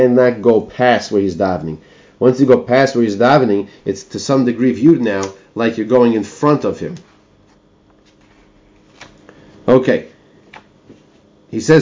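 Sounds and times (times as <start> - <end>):
speech: 0.0 - 7.1, 9.7 - 10.1, 11.5 - 11.8
steady low hum: 0.0 - 11.8
page of a book turning: 6.9 - 9.3
paper rustle: 7.4 - 9.2.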